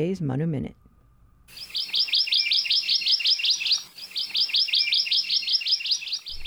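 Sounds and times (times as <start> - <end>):
speech: 0.0 - 0.8, 1.5 - 1.8
Hawaii amakihi singing in an ohia forest on the Big Island of Hawaii: 1.5 - 6.4.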